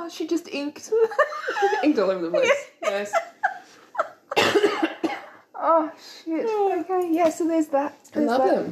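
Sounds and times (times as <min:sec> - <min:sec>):
speech: 0:00.1 - 0:03.3, 0:05.6 - 0:08.6
person coughing: 0:04.3 - 0:05.4.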